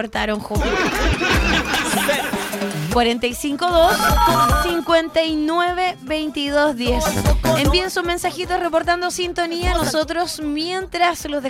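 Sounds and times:
speech: 0.0s - 11.4s
people chuckling: 0.6s - 2.8s
telephone ringing in a bright repeating electronic pattern: 3.8s - 5.5s.

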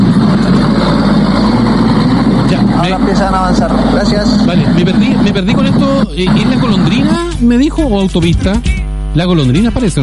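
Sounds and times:
vehicle engines rumbling in congested traffic: 0.0s - 7.4s
speech: 2.9s - 10.0s.

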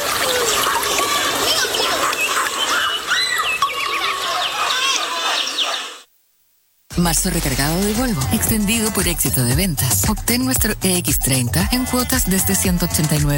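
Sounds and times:
water flowing and trickling: 0.0s - 5.1s
birdsong chirping: 0.2s - 6.1s
speech: 7.0s - 13.3s.

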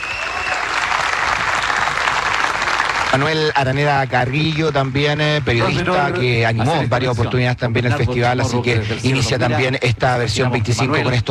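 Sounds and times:
large crowd applauding: 0.0s - 6.3s
speech: 3.1s - 11.3s.

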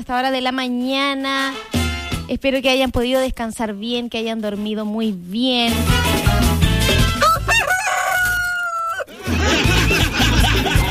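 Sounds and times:
speech: 0.0s - 6.5s
busy music: 0.2s - 8.2s, 9.2s - 10.8s
rooster crowing: 7.2s - 9.2s
laughter: 9.1s - 10.8s.

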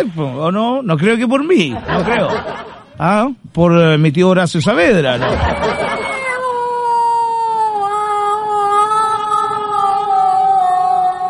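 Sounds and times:
speech: 0.0s - 6.0s
laughter: 1.6s - 3.0s, 5.0s - 6.7s
person imitating a cat's yowl: 5.9s - 11.2s.

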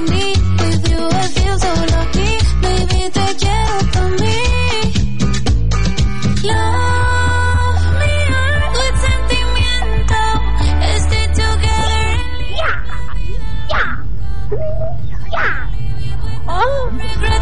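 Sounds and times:
dense music: 0.0s - 12.6s, 15.7s - 17.4s
steady low hum: 5.2s - 17.4s.

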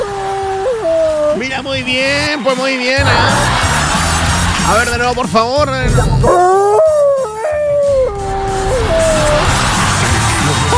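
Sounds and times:
person imitating a wolf howl: 0.0s - 1.4s, 6.1s - 9.6s
warbling Tarzan-style yell: 0.0s - 3.6s, 5.8s - 10.7s
laughter: 1.4s - 10.7s
speech: 1.6s - 3.8s, 4.7s - 6.5s.

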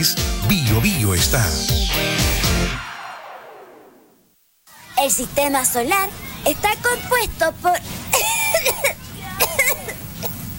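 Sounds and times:
speech: 0.0s - 2.8s, 5.0s - 8.9s
faint hum: 4.2s - 10.5s
young child coughing: 8.1s - 10.4s.

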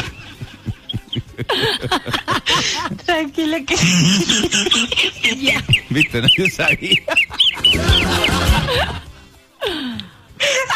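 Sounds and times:
laughter: 0.0s - 3.1s, 3.7s - 9.3s
speech: 1.4s - 9.0s
chicken with bronchitis peeping: 4.7s - 8.6s
chicken with bronchitis giving hoarse wheezy cries: 7.4s - 9.0s.

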